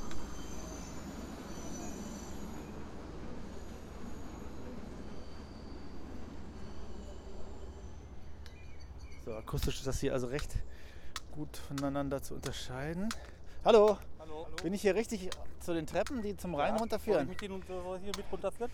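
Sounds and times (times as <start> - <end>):
train rolling through a station: 0.0 - 10.5
speech: 9.3 - 18.7.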